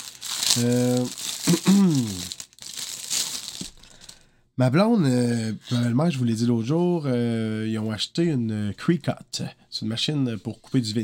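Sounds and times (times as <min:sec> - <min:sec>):
plastic bags crinkling and rustling: 0:00.0 - 0:04.2
low voice: 0:00.6 - 0:02.3
speech: 0:00.6 - 0:02.4, 0:04.6 - 0:11.0.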